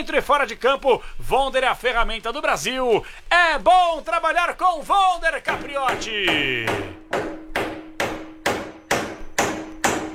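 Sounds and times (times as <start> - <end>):
speech: 0.0 - 7.3
hammer striking with a ringing metallic pitch: 5.5 - 10.1.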